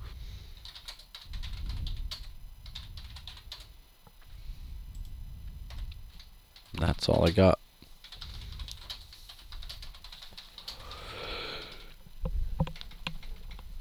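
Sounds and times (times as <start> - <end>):
fingers typing on a computer keyboard: 0.6 - 3.7, 5.7 - 12.0, 12.6 - 13.7
speech: 6.8 - 7.6.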